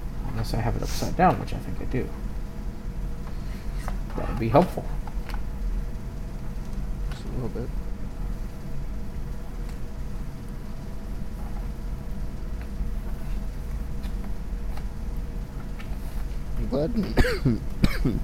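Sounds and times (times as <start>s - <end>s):
steady low rumble: 0.0s - 18.2s
speech: 0.4s - 2.3s, 4.2s - 5.1s, 7.4s - 7.8s, 16.7s - 18.2s
harsh coughing: 17.1s - 18.2s.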